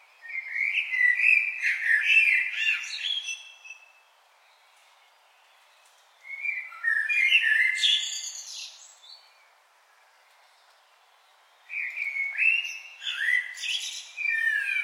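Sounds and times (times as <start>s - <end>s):
Common blackbird singing rich whistled phrases with scratchy endings: 0.2s - 4.0s, 6.3s - 9.4s, 11.7s - 14.8s.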